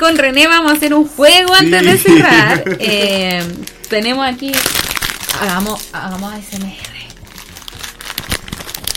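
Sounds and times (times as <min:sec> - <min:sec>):
plastic fortune cookie wrapper crinkling: 0:00.0 - 0:02.1, 0:02.8 - 0:08.9
speech: 0:00.0 - 0:04.8, 0:05.4 - 0:06.9
laughter: 0:01.6 - 0:03.2.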